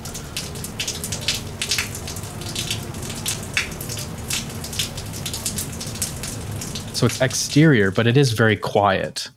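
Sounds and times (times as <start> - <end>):
water dripping from a building into a puddle: 0.0 - 8.2
speech: 7.0 - 9.3.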